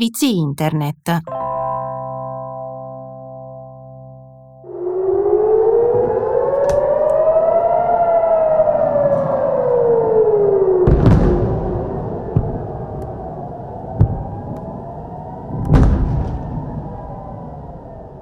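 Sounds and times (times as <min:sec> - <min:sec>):
speech: 0:00.0 - 0:01.4
air raid sirens wailing: 0:04.6 - 0:18.1.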